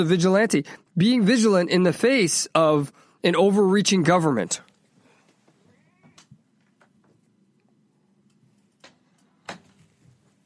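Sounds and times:
speech: 0.0 - 4.7
cat meowing shut inside a closet: 5.6 - 6.4.

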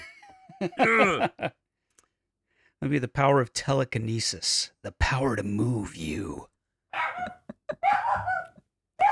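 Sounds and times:
laughter: 0.0 - 1.5, 7.0 - 8.5
speech: 0.6 - 1.6, 2.8 - 6.5
pet dog barking and yelping: 7.0 - 9.1.

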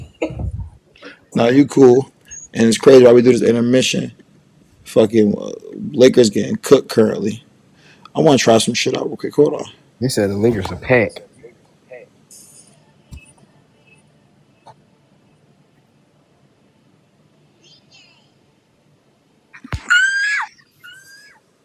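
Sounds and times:
speech: 1.3 - 4.2, 4.9 - 7.5, 8.2 - 11.3
person screaming high-pitched: 19.8 - 21.2.

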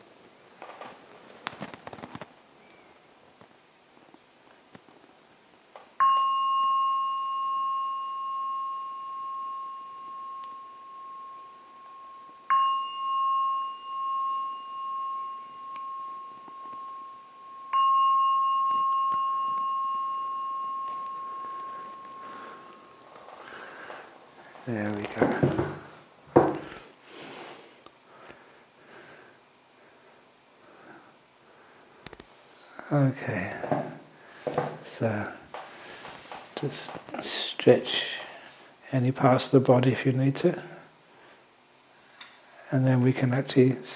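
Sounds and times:
gong struck and ringing: 6.0 - 23.7
speech: 24.7 - 25.8, 32.9 - 33.8, 35.0 - 35.4, 36.6 - 38.2, 38.9 - 40.7, 42.7 - 43.9.

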